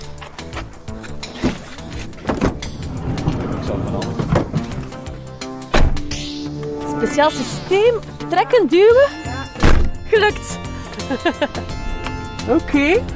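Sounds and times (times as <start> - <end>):
car door with pull-and-push mechanism opening and shutting: 1.3 - 6.1, 9.6 - 10.0
car door slam: 2.2 - 5.0, 5.7 - 6.1, 9.6 - 10.0
speech: 7.0 - 9.3, 10.1 - 11.8, 12.5 - 13.1.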